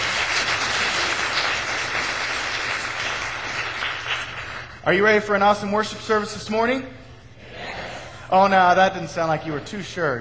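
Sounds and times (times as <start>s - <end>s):
congregation applauding at a church worship service: 0.0s - 5.0s
speech: 4.8s - 7.0s, 8.3s - 10.2s.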